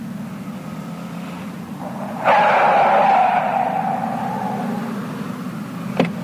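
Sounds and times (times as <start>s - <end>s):
driverless taxi car tire noise: 1.2s - 6.2s
driverless taxi car engine humming: 1.4s - 6.1s.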